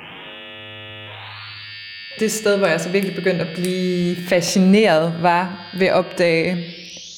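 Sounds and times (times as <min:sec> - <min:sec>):
buzzy electronic tone from sine waves frequency-modulating each other: 0:00.0 - 0:07.1
speech: 0:02.2 - 0:06.8.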